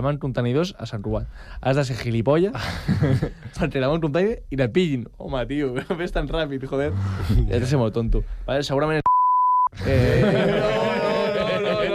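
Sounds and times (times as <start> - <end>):
speech: 0.0 - 9.0, 9.7 - 10.9
laughter: 2.6 - 3.5, 9.8 - 11.9
short steady censor bleep tone: 9.0 - 9.8.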